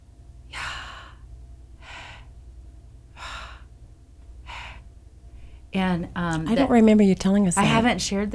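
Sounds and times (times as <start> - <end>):
low steady hum: 0.0 - 8.3
person imitating labored dying breaths: 0.5 - 2.4, 3.1 - 3.7, 4.4 - 5.6
speech: 5.8 - 8.3.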